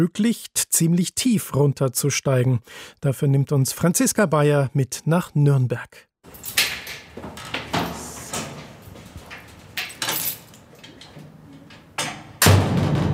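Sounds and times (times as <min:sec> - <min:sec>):
speech: 0:00.0 - 0:06.6
heavy metal door scraping, clanking and rattling: 0:06.3 - 0:13.1.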